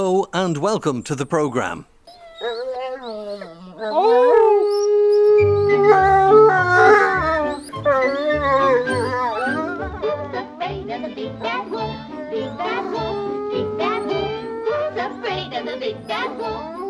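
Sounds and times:
speech: 0.0s - 2.6s
wolf howling: 2.2s - 10.6s, 11.4s - 16.8s.

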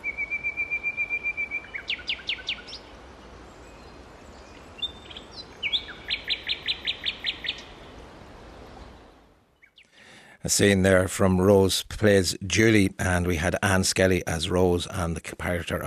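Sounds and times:
nightingale singing: 0.0s - 8.0s, 8.7s - 10.0s
speech: 10.5s - 15.8s.

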